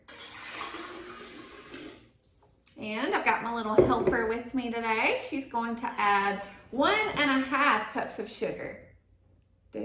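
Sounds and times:
water pouring into a pot: 0.0 - 2.1
speech: 3.6 - 8.8.

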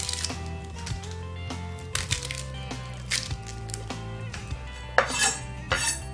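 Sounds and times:
peeling off first layer of red onion skin: 0.0 - 4.1, 5.0 - 6.0
knife chopping one end off half a red onion: 5.0 - 6.0.

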